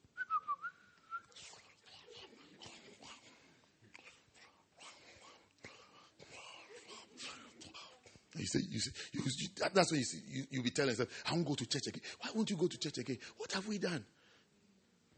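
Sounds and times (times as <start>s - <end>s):
person whistling a short wavering tune: 0.2s - 1.3s
speech: 8.4s - 14.2s.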